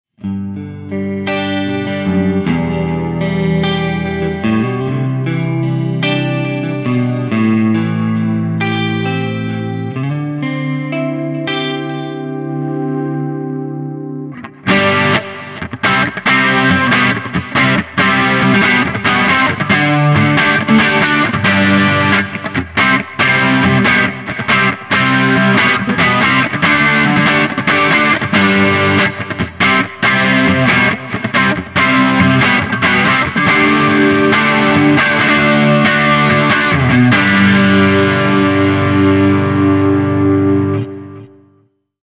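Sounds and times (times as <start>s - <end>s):
guitar through Harley Benton DNAfx GiT effects unit: 0.1s - 41.8s.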